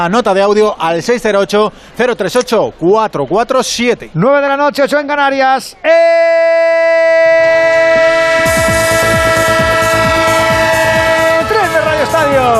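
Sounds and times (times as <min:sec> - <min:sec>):
speech: 0:00.0 - 0:07.4
sustained horn-like chords in a train sound effect jingle: 0:07.2 - 0:12.5.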